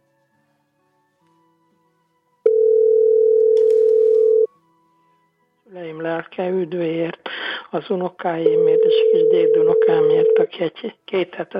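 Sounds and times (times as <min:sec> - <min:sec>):
telephone ringing tone on the phone line: 0:02.5 - 0:04.5, 0:08.5 - 0:10.4
speech: 0:06.3 - 0:11.5.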